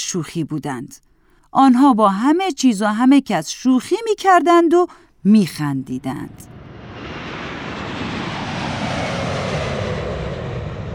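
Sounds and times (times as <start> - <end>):
speech: 0.1 - 6.6
airplane engine roar during takeoff climb: 6.0 - 10.9.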